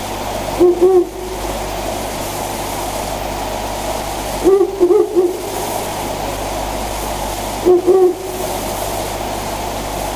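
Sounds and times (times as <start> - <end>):
steady background hiss: 0.0 - 10.1
owl hooting: 0.6 - 1.5, 4.4 - 5.7, 7.6 - 8.6.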